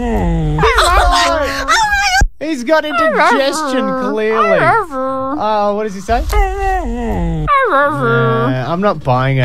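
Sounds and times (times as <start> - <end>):
puppy whining and yowling like speech: 0.1 - 2.2, 2.8 - 5.6, 6.3 - 8.7
speech: 2.6 - 9.4.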